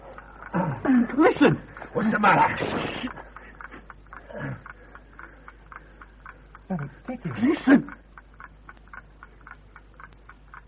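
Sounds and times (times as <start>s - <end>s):
bomb ticking: 0.0s - 10.6s
speech: 0.6s - 3.2s, 4.4s - 4.7s, 6.7s - 8.0s.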